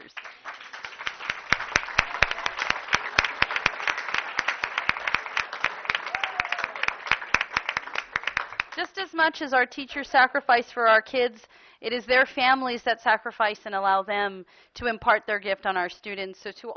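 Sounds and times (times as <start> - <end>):
room full of people applauding: 0.0 - 8.9
faint whoop: 2.0 - 2.7, 6.0 - 7.0
speech: 8.8 - 16.7.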